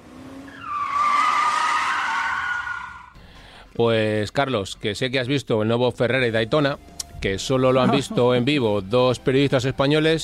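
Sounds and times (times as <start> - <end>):
car braking hard with tire screech: 0.4 - 3.2
speech: 3.8 - 10.2
laughter: 7.7 - 8.6.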